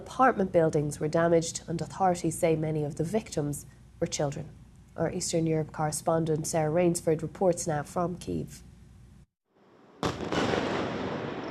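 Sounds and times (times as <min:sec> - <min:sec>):
speech: 0:00.1 - 0:08.7
explosions during missile and drone attack on Kyiv at night: 0:09.9 - 0:11.4.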